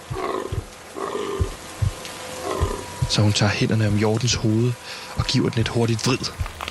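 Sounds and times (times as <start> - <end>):
young deer low breathy grunting: 0.0 - 1.6, 2.4 - 3.0
young deer hit by a car whimpering: 0.1 - 1.6
speech: 3.1 - 6.5.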